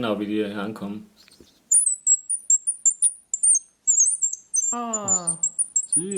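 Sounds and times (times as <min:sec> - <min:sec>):
speech: 0:00.0 - 0:01.4, 0:04.7 - 0:06.1
round wooden bird-call squeaker with iron inside twisted back and forth: 0:01.7 - 0:06.1.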